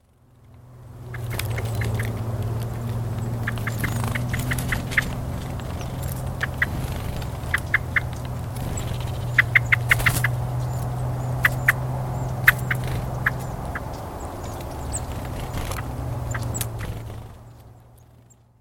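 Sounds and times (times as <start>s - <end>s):
blackbird: 1.0s - 18.5s.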